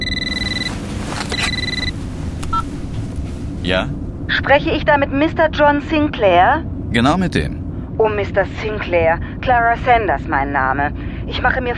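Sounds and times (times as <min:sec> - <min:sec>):
brief beeps: 0:00.0 - 0:02.7
mobile phone ringing: 0:00.0 - 0:02.7
Bentley car rumbling while driven: 0:00.0 - 0:11.7
speech: 0:03.7 - 0:11.7.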